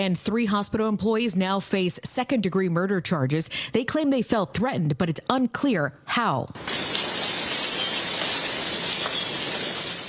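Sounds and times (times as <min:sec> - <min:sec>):
speech: 0:00.0 - 0:07.0
hail pouring down during severe thunderstorms in Fort Worth Texas: 0:06.6 - 0:10.0.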